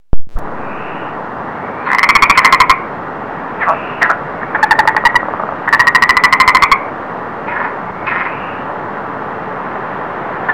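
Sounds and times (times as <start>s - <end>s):
frog chorus in a biotope: 1.7s - 2.9s, 3.6s - 6.9s, 7.5s - 8.6s.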